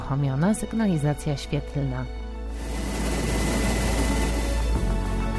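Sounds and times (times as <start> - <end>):
speech: 0.1 - 2.7
helicopter rotor spinning up with engine roar: 2.5 - 5.2.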